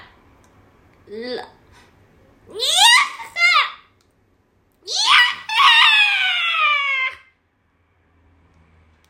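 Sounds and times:
speech: 0:01.1 - 0:01.8
loud high-pitched screaming: 0:04.9 - 0:07.3.

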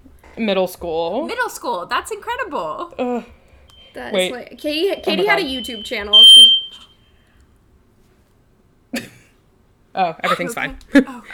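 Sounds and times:
speech: 0:00.4 - 0:06.6, 0:10.0 - 0:11.3
fire alarm shrill electronic beep: 0:03.7 - 0:04.3, 0:04.9 - 0:07.0
person coughing: 0:09.0 - 0:09.4.

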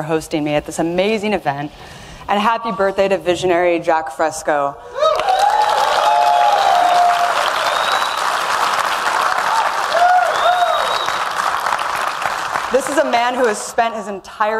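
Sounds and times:
speech: 0:00.0 - 0:05.1, 0:12.7 - 0:14.5
audience cheers: 0:04.9 - 0:12.7
large audience applause at a 100th birthday event: 0:05.0 - 0:13.6
audience whistles: 0:07.2 - 0:08.6, 0:10.0 - 0:11.4.

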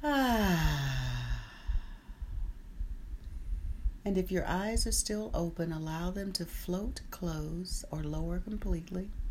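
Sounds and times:
long voiced sigh of a deep exhale during a guided breathing exercise: 0:00.0 - 0:02.4
soft breathy puffs: 0:00.0 - 0:04.0
speech: 0:04.0 - 0:09.2.

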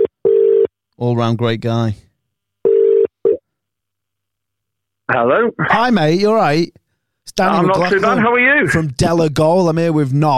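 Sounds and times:
telephone ringing tone on an outgoing call: 0:00.0 - 0:00.7, 0:02.6 - 0:03.4
speech: 0:01.0 - 0:02.1, 0:05.1 - 0:10.3.

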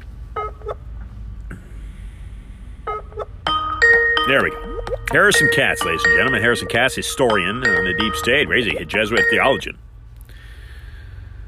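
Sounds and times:
outgoing phone call ringing on the line: 0:03.5 - 0:09.7
speech: 0:04.3 - 0:09.8.

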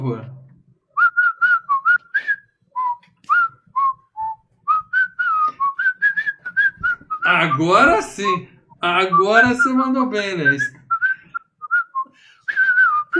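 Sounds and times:
speech: 0:00.0 - 0:00.4, 0:07.3 - 0:10.8
person whistling a movie theme melody: 0:01.0 - 0:08.0, 0:09.1 - 0:09.8, 0:10.4 - 0:13.1.

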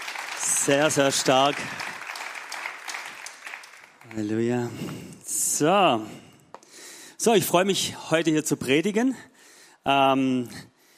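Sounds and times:
crowd clapping: 0:00.0 - 0:04.7
speech: 0:00.7 - 0:01.9, 0:04.1 - 0:06.3, 0:07.2 - 0:10.7.

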